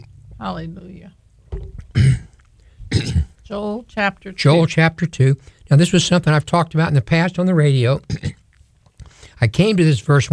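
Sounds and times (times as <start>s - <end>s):
speech: 0.4s - 1.2s, 3.5s - 8.4s, 9.4s - 10.3s
man coughing harshly during a sermon: 1.9s - 3.4s, 8.1s - 8.4s.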